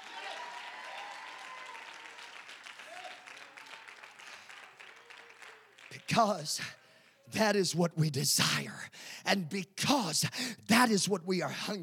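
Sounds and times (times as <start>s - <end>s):
church audience clapping: 0.0s - 7.3s
speech: 6.1s - 11.8s.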